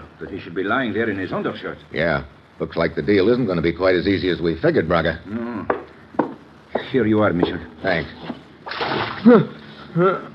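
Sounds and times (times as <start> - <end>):
speech: 0.2 - 5.8, 6.9 - 10.3
person grunting when caught in water: 5.3 - 5.8
water splashed from a pitcher: 8.6 - 9.5.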